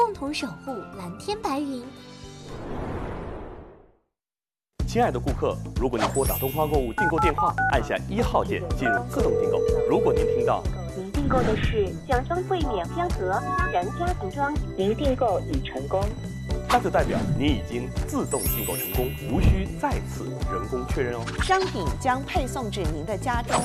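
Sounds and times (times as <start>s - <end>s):
music: 0.0s - 2.4s, 4.8s - 23.6s
people talking: 4.9s - 23.6s
telephone keypad DTMF tones on a shopping order phone line: 8.8s - 10.6s.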